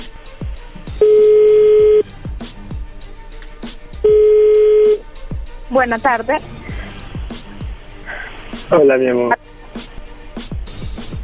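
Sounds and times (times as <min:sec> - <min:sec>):
ringback tones of an outgoing phone call: 0:01.0 - 0:02.1, 0:04.0 - 0:05.1
faint rhythmic clicking: 0:03.3 - 0:03.7
speech: 0:05.8 - 0:06.6, 0:08.7 - 0:09.4.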